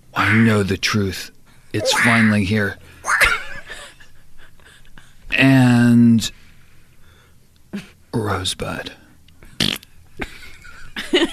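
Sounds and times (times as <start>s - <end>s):
speech: 0.2s - 3.0s, 5.4s - 6.4s, 7.7s - 9.0s
fart: 9.6s - 9.9s.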